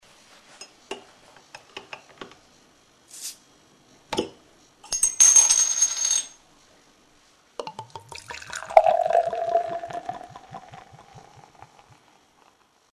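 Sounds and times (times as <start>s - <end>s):
beer: 7.6s - 12.6s.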